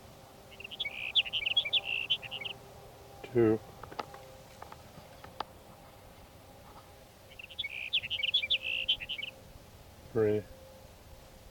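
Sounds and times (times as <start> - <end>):
low steady hum: 0.0 - 11.5
sage sparrow song: 0.5 - 2.6, 7.3 - 9.4
speech: 3.3 - 3.7, 10.2 - 10.5.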